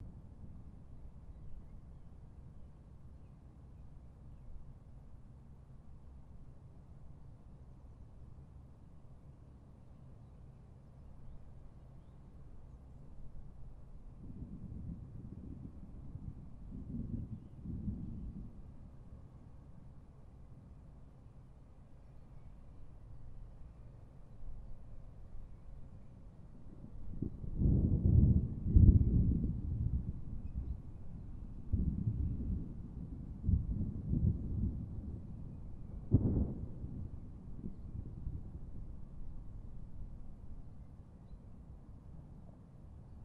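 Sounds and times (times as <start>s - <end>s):
violent thunderstorm: 14.1s - 18.9s, 26.7s - 40.5s.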